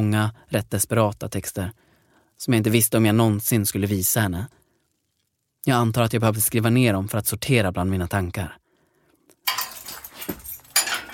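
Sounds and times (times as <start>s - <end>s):
speech: 0.0s - 1.8s, 2.4s - 4.6s, 5.6s - 8.6s
keys rattling in the locks of a jail cell door: 9.4s - 11.1s.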